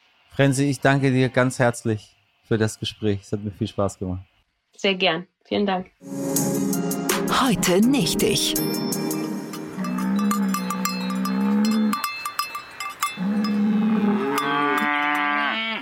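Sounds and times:
speech: 0:00.4 - 0:06.7, 0:07.4 - 0:09.0
bright metallic clanking: 0:09.0 - 0:13.6
cow mooing: 0:09.6 - 0:12.1, 0:13.1 - 0:15.8.

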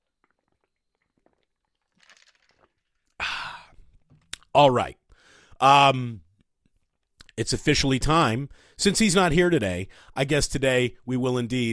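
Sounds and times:
person sipping a drink with soft wet slurping: 0:00.0 - 0:04.5
loud breathy exhale or sigh into the microphone: 0:03.2 - 0:03.8, 0:05.1 - 0:05.6
speech: 0:04.6 - 0:05.0, 0:05.6 - 0:06.2, 0:07.4 - 0:11.7.

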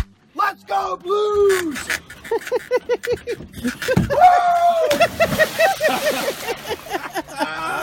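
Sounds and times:
speech: 0:00.6 - 0:06.7
laughter: 0:02.1 - 0:07.8
sports fan jumping into a lake, splashing: 0:04.8 - 0:06.9.

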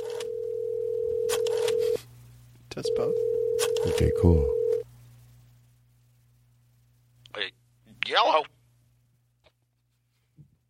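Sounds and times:
vintage telephone dial tone: 0:00.0 - 0:02.0, 0:02.9 - 0:04.8
speech: 0:02.8 - 0:04.6.

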